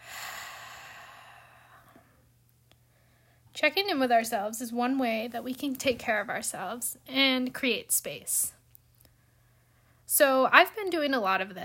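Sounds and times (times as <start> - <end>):
deep breath exhaled during a guided breathing exercise: 0.0 - 2.2
speech: 3.6 - 8.6, 10.1 - 11.6.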